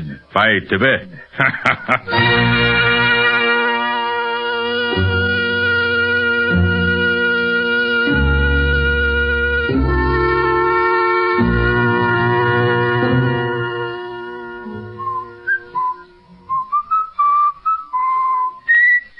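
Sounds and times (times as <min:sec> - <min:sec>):
speech: 0:00.4 - 0:02.8
laughter: 0:01.1 - 0:02.4
sustained low droning chord: 0:02.2 - 0:16.6
man whistling a tune: 0:14.9 - 0:19.1.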